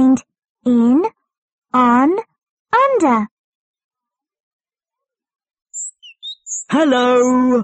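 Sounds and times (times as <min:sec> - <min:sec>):
speech: 0:00.2 - 0:03.3, 0:06.7 - 0:07.6
bird chirping with whistle-like notes: 0:05.7 - 0:07.6.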